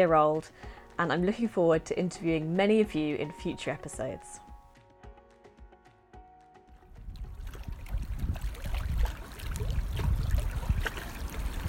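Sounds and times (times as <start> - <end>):
speech: 0.0 - 4.4
water lapping onto a loch shore: 7.1 - 11.6.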